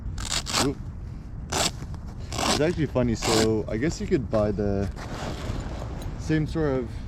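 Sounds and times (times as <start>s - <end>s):
zipper being pulled open: 0.2s - 0.8s, 1.5s - 3.5s, 5.0s - 5.9s
speech: 0.6s - 0.9s, 2.6s - 5.1s, 6.3s - 7.0s.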